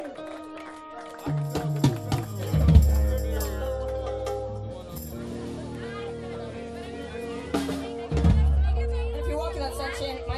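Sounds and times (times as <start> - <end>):
isolated drums: 1.3 - 5.8, 7.4 - 10.3.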